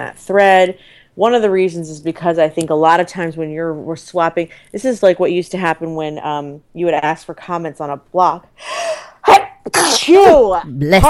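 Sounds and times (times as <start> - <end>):
speech: 0.1 - 8.8, 9.6 - 11.0
sneeze: 9.2 - 10.4.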